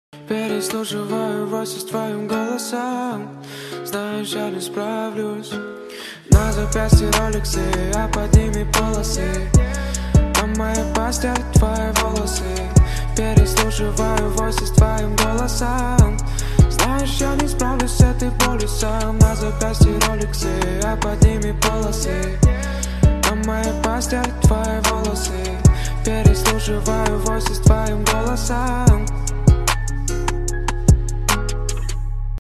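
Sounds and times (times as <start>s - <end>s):
guitar cover: 0.2s - 32.4s.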